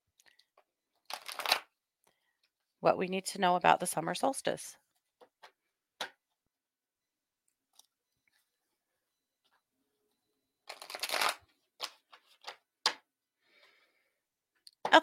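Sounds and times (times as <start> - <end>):
tarot cards being shuffled: 1.1 - 1.7, 10.7 - 13.0
speech: 2.8 - 4.8.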